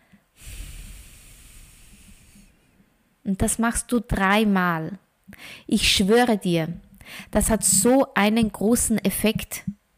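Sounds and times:
deep breath in through the nose and long exhale: 0:00.0 - 0:02.8
speech: 0:03.3 - 0:09.8.

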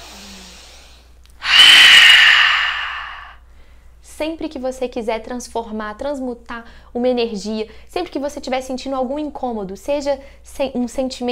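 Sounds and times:
forceful breath through the nose and mouth in a yoga breathing technique: 0:01.4 - 0:03.4
speech: 0:04.2 - 0:11.3.

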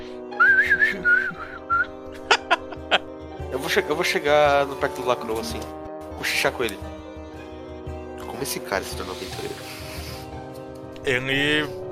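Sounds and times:
person whistling a short wavering tune: 0:00.3 - 0:02.0
laughter: 0:02.1 - 0:03.1
speech: 0:03.7 - 0:06.9, 0:08.4 - 0:09.8, 0:11.0 - 0:11.8.

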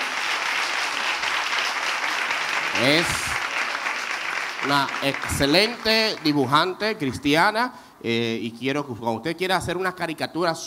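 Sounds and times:
audience applause: 0:00.0 - 0:06.7
speech: 0:02.8 - 0:03.3, 0:04.6 - 0:10.6.

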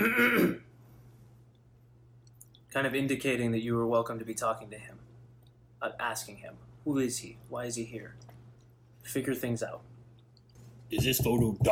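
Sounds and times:
man clearing his throat: 0:00.0 - 0:00.7
speech: 0:02.8 - 0:05.1, 0:05.8 - 0:08.3, 0:09.0 - 0:09.9, 0:10.9 - 0:11.7.

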